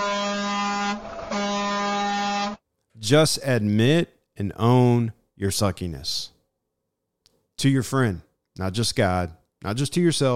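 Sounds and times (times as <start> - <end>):
loud blaring air horn honks: 0.0 - 2.6
speech: 3.0 - 6.4, 7.6 - 10.3.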